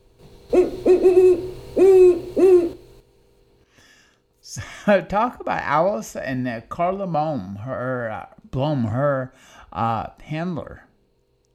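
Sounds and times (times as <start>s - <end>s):
owl hooting: 0.4s - 3.0s
speech: 4.8s - 10.9s.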